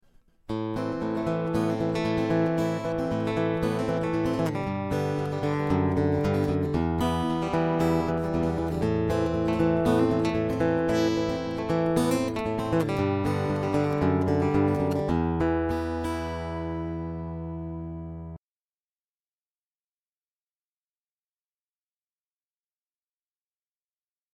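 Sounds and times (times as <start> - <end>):
Ovation Celebrity 44 acoustic guitar picking through cable: 0.1 - 18.4.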